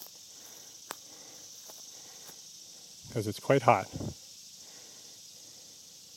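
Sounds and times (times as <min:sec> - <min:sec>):
cicadas buzzing in summer heat: 0:00.0 - 0:06.1
speech: 0:03.1 - 0:04.2.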